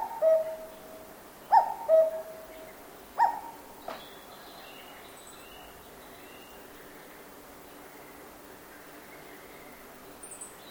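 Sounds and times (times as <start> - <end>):
cuckoo call in a forest in Japan: 0.0 - 0.7, 1.5 - 2.4
faint steady background hiss: 0.0 - 10.7.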